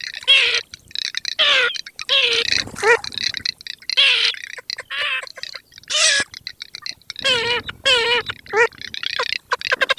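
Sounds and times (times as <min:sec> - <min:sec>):
garganey ducks: 0:00.0 - 0:09.9.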